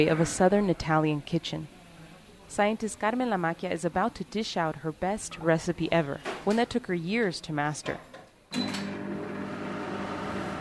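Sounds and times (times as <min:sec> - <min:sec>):
speech: 0:00.0 - 0:01.8, 0:02.5 - 0:08.7
microwave oven humming with wet wheat grains rotating inside: 0:08.6 - 0:10.5.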